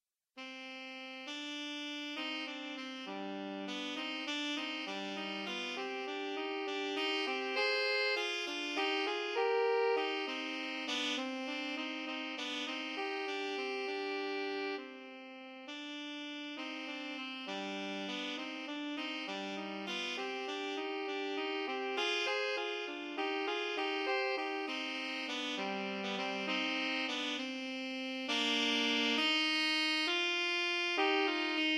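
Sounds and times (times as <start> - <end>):
saxophone duet: 0.4 - 31.7.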